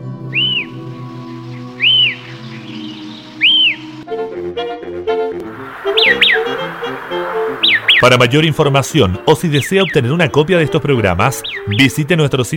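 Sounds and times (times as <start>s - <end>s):
steady musical backing: 0.0s - 12.5s
white-crested elaenia whistling song: 0.3s - 4.0s, 5.5s - 8.7s, 9.5s - 12.5s
speech: 5.8s - 12.5s.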